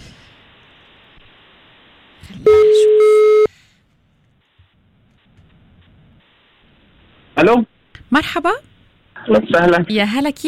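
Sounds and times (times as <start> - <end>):
speech: 2.3 - 2.6, 7.4 - 10.4
telephone line tone of an incoming call to a phone-in contest: 2.4 - 3.5.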